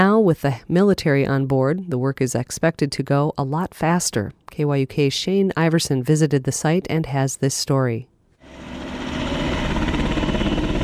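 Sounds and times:
speech: 0:00.0 - 0:08.7
military helicopter rotor and engine roar departing: 0:08.4 - 0:10.8.

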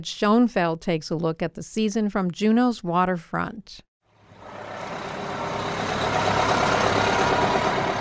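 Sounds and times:
speech: 0:00.0 - 0:03.9
tour bus engines idling at a cruise ship dock in Juneau Alaska: 0:04.2 - 0:07.9.

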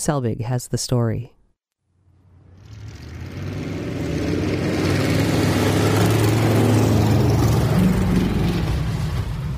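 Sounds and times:
speech: 0:00.0 - 0:01.4
race car engine revving on a frozen lake: 0:02.2 - 0:09.5.

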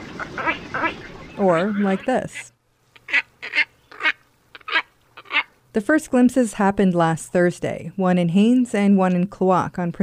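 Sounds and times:
glossy down-curved-billed wading bird giving harsh nasal grunting calls: 0:00.0 - 0:05.5
speech: 0:00.2 - 0:02.5, 0:05.8 - 0:10.0.

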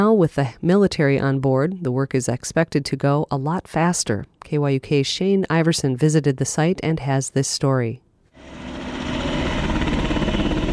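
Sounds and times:
speech: 0:00.0 - 0:08.6
military helicopter taking off: 0:08.4 - 0:10.7.

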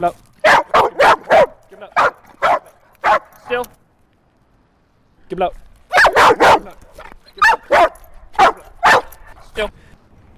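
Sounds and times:
speech: 0:00.0 - 0:00.2, 0:05.3 - 0:05.6, 0:09.6 - 0:09.8
trained dog barking on command: 0:00.4 - 0:03.4, 0:05.9 - 0:09.3.

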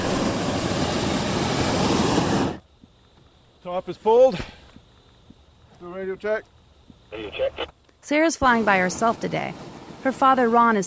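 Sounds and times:
burner roaring as pilot lights are lit: 0:00.0 - 0:02.6
speech: 0:03.7 - 0:04.6, 0:05.8 - 0:10.8.

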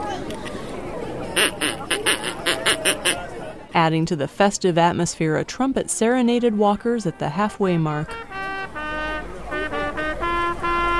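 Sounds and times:
noise: 0:00.0 - 0:10.9
person imitating duck quacks at a walking race: 0:01.4 - 0:03.2
speech: 0:03.8 - 0:08.3.

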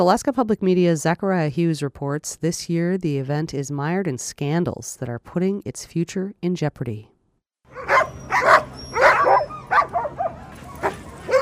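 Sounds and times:
speech: 0:00.0 - 0:07.1
pack of sled dogs barking and yipping: 0:07.7 - 0:11.4.

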